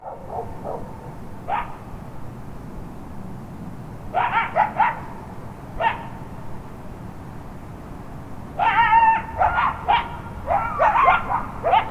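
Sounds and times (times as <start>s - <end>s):
coyotes yipping and howling in the hills at midnight: 1.5s - 1.8s, 4.1s - 5.1s, 5.8s - 6.1s, 8.6s - 11.9s.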